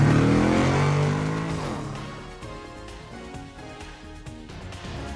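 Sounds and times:
car engine revving and accelerating while shifting into first gear: 0.0s - 2.7s.

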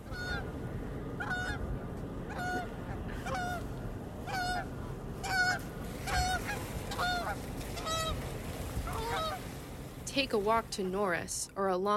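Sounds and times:
low rumble of outdoor noise: 0.0s - 11.9s
Canada geese honking: 0.1s - 0.5s, 1.2s - 1.6s, 2.3s - 8.2s, 8.8s - 9.5s
speech: 10.2s - 11.9s.

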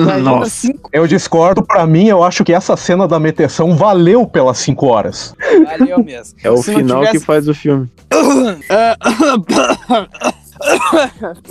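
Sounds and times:
speech: 0.0s - 11.4s
laughter: 5.4s - 6.2s
person straining to clear throat: 8.1s - 11.2s.

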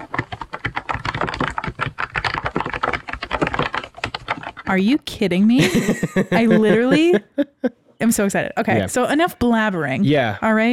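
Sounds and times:
typing on a retro-style mechanical keyboard: 0.0s - 5.3s
speech: 4.7s - 7.3s, 8.0s - 10.7s
laughter: 5.5s - 7.8s.

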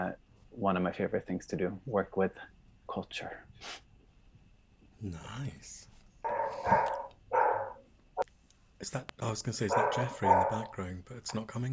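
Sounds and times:
speech: 0.0s - 3.9s, 5.0s - 7.0s, 8.8s - 11.7s
dog barking: 6.2s - 7.8s, 9.6s - 10.8s.

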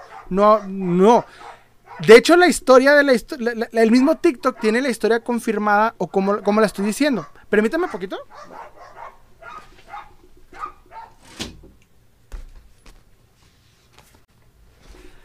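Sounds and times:
several dogs barking with sharp yips: 0.0s - 2.3s, 3.8s - 5.4s, 6.2s - 11.2s
speech: 0.3s - 8.8s.

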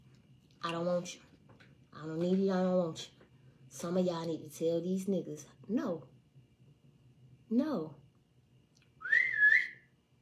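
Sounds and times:
speech: 0.6s - 1.3s, 2.0s - 6.1s, 7.5s - 8.0s
person whistling: 9.0s - 9.9s.

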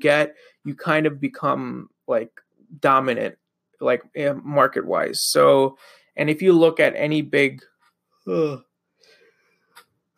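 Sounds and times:
speech: 0.0s - 8.7s
person yawning: 8.3s - 8.6s.

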